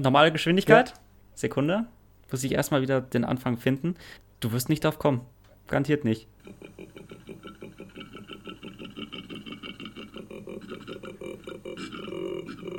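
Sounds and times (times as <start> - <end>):
speech: 0.0 - 7.3
laughter: 6.4 - 12.7
koala deep rasping grunting bellow: 9.7 - 12.7.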